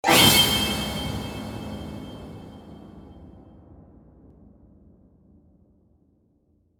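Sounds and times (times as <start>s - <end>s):
scary horror jumpscare sound: 0.0s - 2.3s.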